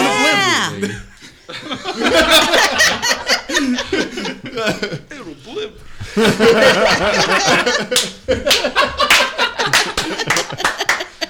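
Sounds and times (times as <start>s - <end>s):
people laughing heartily: 0.0s - 11.2s
speech: 0.8s - 1.1s, 6.2s - 7.7s
sharp uneven hand claps: 7.8s - 11.2s.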